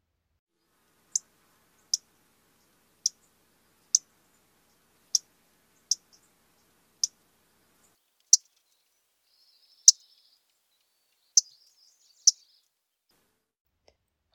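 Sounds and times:
MacGillivray's warbler sharp clipped call notes: 0:01.1 - 0:07.2, 0:07.8 - 0:12.7.

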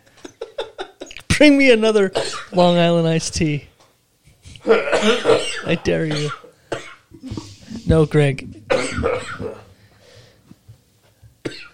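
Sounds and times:
speech: 0:01.4 - 0:03.7, 0:04.7 - 0:06.4, 0:07.3 - 0:09.6
raspy cough: 0:02.2 - 0:02.5, 0:04.6 - 0:07.1, 0:08.7 - 0:09.7, 0:11.4 - 0:11.7
quiet breathy sounds: 0:09.4 - 0:10.6.

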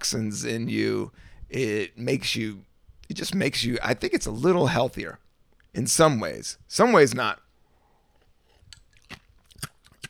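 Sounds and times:
speech: 0:00.0 - 0:07.4
coffee ice being chewed and crunched: 0:08.2 - 0:10.0.

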